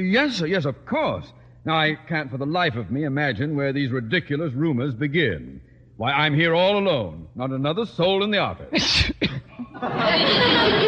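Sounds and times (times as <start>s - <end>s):
speech: 0.0s - 10.8s
person sneezing: 8.7s - 9.6s
laughter: 9.5s - 10.8s.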